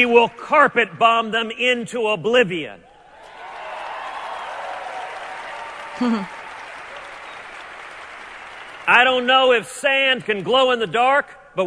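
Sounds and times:
speech: 0:00.0 - 0:02.9, 0:06.0 - 0:06.4, 0:08.9 - 0:11.6
short loud whoop: 0:03.2 - 0:07.4
large crowd clapping and cheering at a political summit in Iowa: 0:03.2 - 0:11.0.

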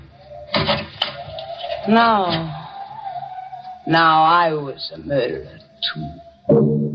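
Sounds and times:
closet door pushed shut indoors: 0:00.5 - 0:01.2
speech: 0:01.8 - 0:02.6, 0:03.9 - 0:06.8.

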